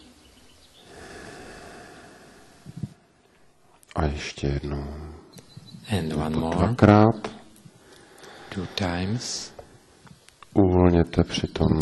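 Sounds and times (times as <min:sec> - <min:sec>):
deep breath in and out during a breathing exercise: 0:00.8 - 0:03.6, 0:07.7 - 0:10.1
speech: 0:04.0 - 0:05.2, 0:05.9 - 0:07.3, 0:08.5 - 0:09.6, 0:10.6 - 0:11.7.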